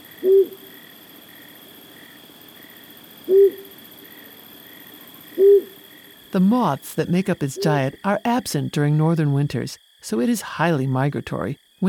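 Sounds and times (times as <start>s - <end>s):
Flammulated Owl giving low soft hoots: 0.0s - 0.8s, 3.2s - 3.8s, 5.0s - 6.0s
faint insect-like tones: 0.0s - 11.8s
steady background hum: 0.0s - 11.8s
speech: 6.4s - 11.8s.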